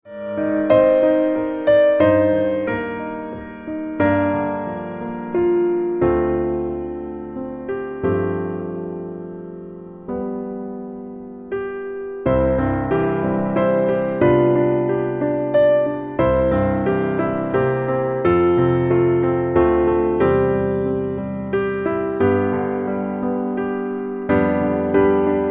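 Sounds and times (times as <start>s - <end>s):
low piano: 0.0s - 25.4s.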